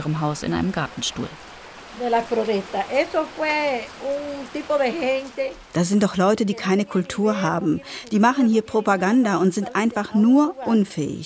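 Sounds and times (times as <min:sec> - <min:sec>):
heavy rain pouring: 0:00.0 - 0:11.2
speech: 0:00.0 - 0:11.2.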